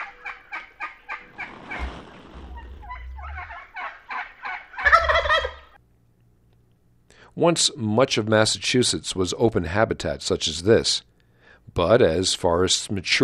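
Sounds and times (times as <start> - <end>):
flock of wild turkeys softly clucking in a meadow: 0.0 - 5.8
speech: 7.4 - 11.1, 11.7 - 13.2.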